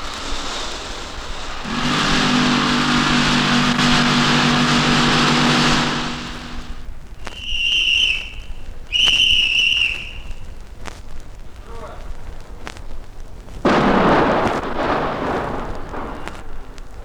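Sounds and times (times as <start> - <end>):
explosion from blasting a tunnel through a mountain: 0.0 - 6.9, 13.6 - 17.0
rock drilling rig roaring in a mountain tunnel: 0.0 - 6.9, 13.7 - 16.6
roaring, rumbling debris noise from tunnel blasting: 0.0 - 7.1, 13.6 - 17.0
high-pitched warning whistle: 1.6 - 10.4.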